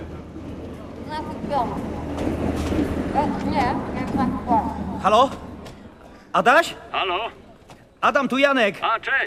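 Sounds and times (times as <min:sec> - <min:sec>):
train pulling out of a station: 0:00.0 - 0:07.8
speech: 0:01.1 - 0:05.5, 0:06.3 - 0:07.4, 0:08.0 - 0:09.2.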